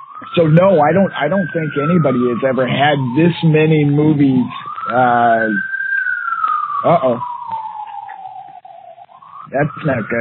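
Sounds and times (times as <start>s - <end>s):
emergency vehicle siren wailing: 0.0s - 10.1s
speech: 0.3s - 5.7s, 6.8s - 7.3s, 9.5s - 10.1s.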